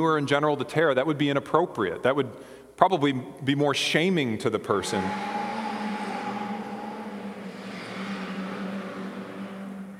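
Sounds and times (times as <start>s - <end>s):
speech: 0.0s - 5.4s
car racing past outside: 4.8s - 9.9s.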